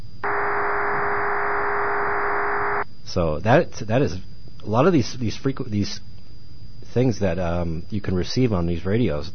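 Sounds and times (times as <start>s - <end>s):
scrambled voice signal buzzing hiss over a radio: 0.0s - 2.8s
speech: 3.1s - 6.1s, 6.9s - 9.3s.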